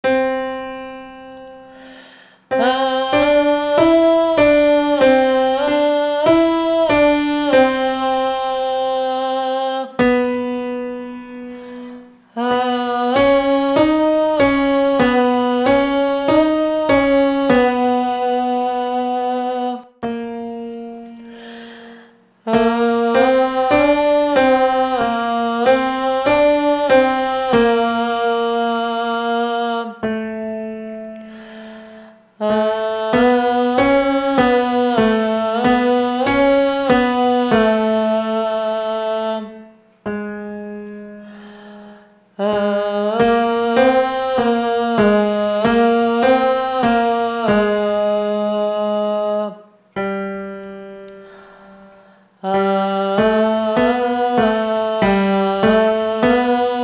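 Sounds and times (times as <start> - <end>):
full piano: 0.0 - 56.8
voice: 2.5 - 10.0, 12.4 - 20.0, 22.5 - 30.1, 32.4 - 39.6, 42.4 - 49.6, 52.4 - 56.8.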